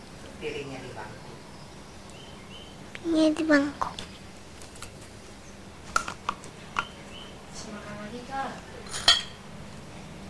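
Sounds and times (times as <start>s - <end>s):
speech: 0.4s - 1.5s, 3.0s - 4.1s, 8.1s - 9.1s
spoon and cutlery clinking on dishes during a meal: 8.8s - 9.4s.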